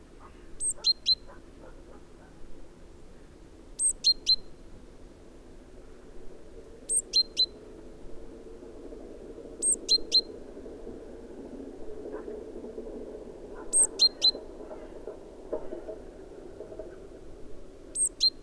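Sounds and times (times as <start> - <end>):
faint background noise: 0.0 - 18.4
great tit Parus major calling: 0.2 - 1.4, 3.8 - 4.6, 6.9 - 7.6, 9.6 - 10.3, 13.6 - 14.4, 18.0 - 18.4.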